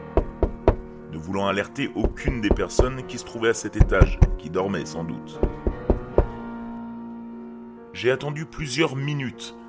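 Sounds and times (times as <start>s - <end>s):
soft knocking on a door: 0.1s - 0.8s, 2.0s - 3.1s, 3.8s - 4.4s, 5.4s - 6.4s
speech: 1.2s - 5.6s, 8.0s - 9.6s.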